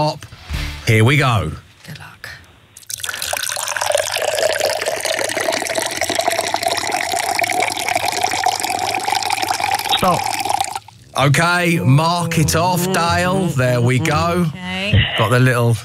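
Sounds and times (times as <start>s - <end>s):
speech: 0.0s - 0.3s, 0.9s - 2.0s, 10.0s - 10.3s, 11.2s - 15.8s
liquid pouring into a container: 2.8s - 11.1s.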